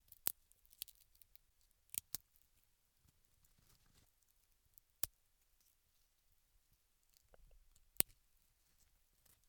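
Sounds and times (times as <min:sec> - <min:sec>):
twig breaking, snapped and crushed: 0:00.1 - 0:01.3, 0:01.9 - 0:02.2.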